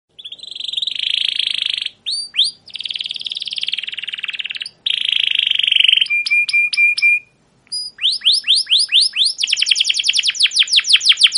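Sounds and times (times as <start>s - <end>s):
canary song: 0.1s - 11.3s.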